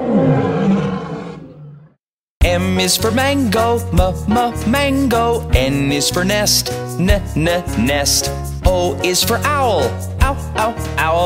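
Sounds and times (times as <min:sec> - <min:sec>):
lion roaring: 0:00.0 - 0:02.0
speech: 0:02.6 - 0:11.2.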